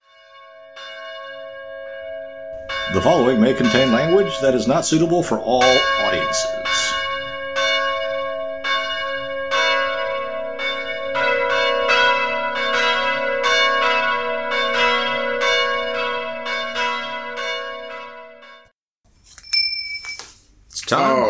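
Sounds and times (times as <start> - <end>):
bells on a leather strap ringing: 0.0 - 18.7, 19.3 - 20.4
speech: 2.9 - 6.8, 20.9 - 21.2.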